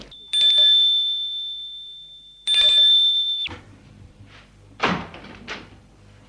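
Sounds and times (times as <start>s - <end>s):
doorbell ringing at a flat's door: 0.1s - 3.5s.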